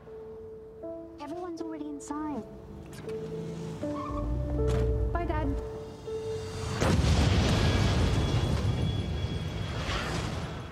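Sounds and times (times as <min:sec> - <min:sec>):
tense tonal music in a film trailer: 0:00.0 - 0:10.7
speech: 0:01.3 - 0:04.0
bomb explosion in a film trailer: 0:06.7 - 0:10.7.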